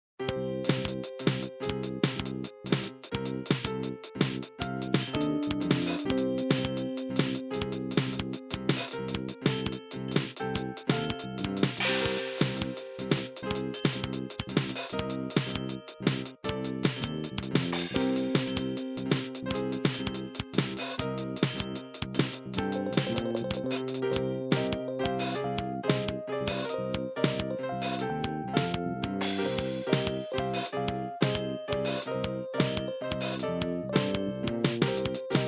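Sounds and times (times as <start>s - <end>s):
fast-paced tune: 0.6s - 35.4s.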